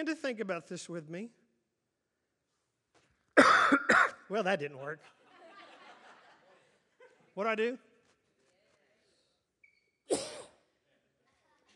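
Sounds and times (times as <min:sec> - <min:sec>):
speech: 0:00.0 - 0:01.4, 0:04.3 - 0:05.2, 0:07.4 - 0:07.9
person coughing: 0:03.4 - 0:04.2, 0:10.1 - 0:10.6
laughter: 0:04.9 - 0:07.4.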